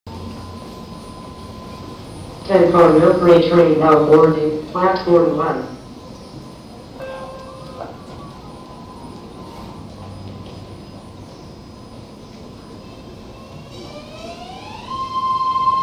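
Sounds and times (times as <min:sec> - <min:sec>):
Pittsburgh/Bay Point commuter train approaching station platform: 0:00.0 - 0:15.8
speech: 0:02.5 - 0:05.8.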